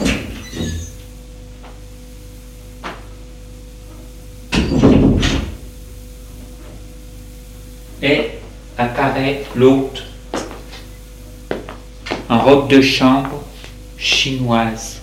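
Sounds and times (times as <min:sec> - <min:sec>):
door opening with a broad rumbling scrape: 0:00.0 - 0:01.1
steady low hum: 0:00.0 - 0:12.8
speech: 0:08.0 - 0:10.1, 0:12.4 - 0:13.4, 0:14.0 - 0:15.0.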